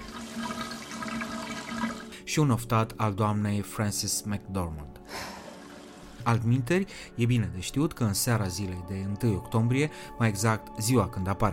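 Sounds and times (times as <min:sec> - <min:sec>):
water running from a faucet: 0:00.0 - 0:02.2, 0:05.4 - 0:06.2
speech: 0:02.3 - 0:05.1, 0:06.2 - 0:11.5.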